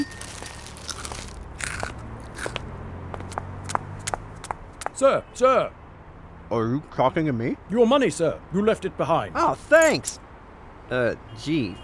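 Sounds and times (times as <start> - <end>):
crunching on crunchy broccoli clumps from a king-size tub: 0.1 - 2.6
speech: 5.0 - 5.8, 6.5 - 10.2, 10.9 - 11.8.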